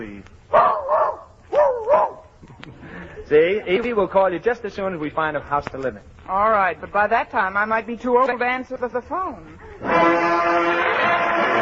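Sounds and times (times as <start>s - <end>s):
speech: 0.0s - 0.7s, 3.3s - 10.8s
small dog barking: 0.5s - 2.3s.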